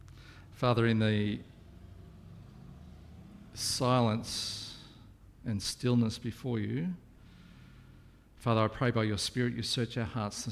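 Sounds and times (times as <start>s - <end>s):
motorbike engine droning: 0.0s - 5.4s
speech: 0.6s - 1.5s, 3.7s - 4.6s, 5.4s - 7.0s, 8.4s - 10.5s.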